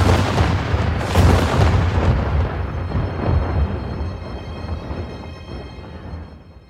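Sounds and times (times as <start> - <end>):
heavy cannon fire in a battle: 0.0 - 3.6.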